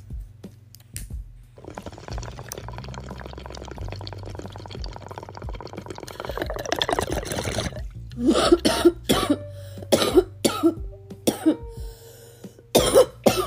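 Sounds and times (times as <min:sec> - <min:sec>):
bong water with an ice cube bubbling: 0:01.6 - 0:08.2
person coughing harshly after a bong hit: 0:08.2 - 0:11.6, 0:12.8 - 0:13.4.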